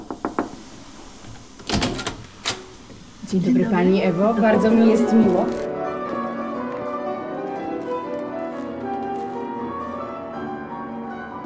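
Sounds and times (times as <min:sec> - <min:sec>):
background piano music: 0:01.9 - 0:11.4
speech: 0:03.3 - 0:05.6.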